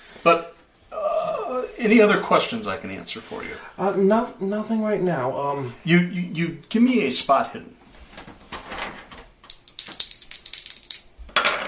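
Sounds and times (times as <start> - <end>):
speech: 0.2 - 0.5, 1.8 - 7.8
dice rolling on a hard tabletop: 9.5 - 11.6.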